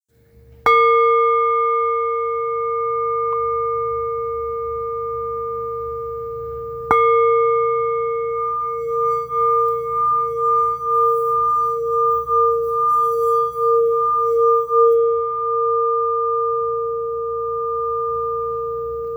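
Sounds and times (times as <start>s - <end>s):
684g decorated Tibetan singing bowl: 0.6s - 19.1s.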